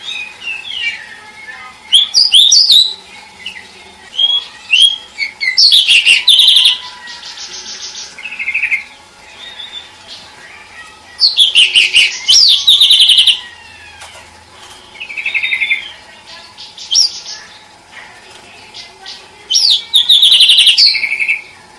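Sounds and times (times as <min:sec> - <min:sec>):
cage bird training song with rapid chirps and sweeping whistles: 0:00.0 - 0:10.2, 0:11.2 - 0:13.5, 0:15.0 - 0:16.0, 0:19.5 - 0:21.5.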